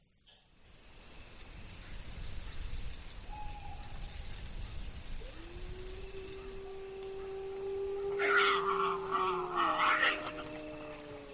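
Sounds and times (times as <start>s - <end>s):
steady outdoor hiss: 0.1s - 11.3s
wolf howling in the Muniellos oak forest in Asturias Spain: 5.0s - 11.3s
frightened wild boar grunting in the Muniellos oak forest in Asturias Spain: 8.1s - 11.2s.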